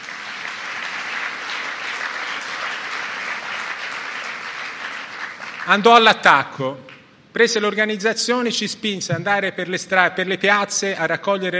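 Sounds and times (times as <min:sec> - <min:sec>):
audience applause in a hall: 0:00.0 - 0:05.9
speech: 0:05.7 - 0:11.5.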